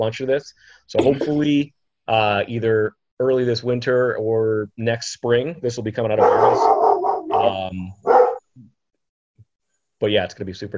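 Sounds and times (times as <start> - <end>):
speech: 0.0 - 8.7, 10.0 - 10.7
dog barking: 6.2 - 8.5.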